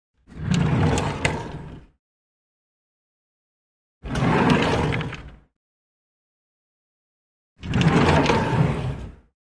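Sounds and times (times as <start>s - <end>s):
wooden drawer opening and closing: 0.3s - 1.9s, 4.0s - 5.5s, 7.6s - 9.3s.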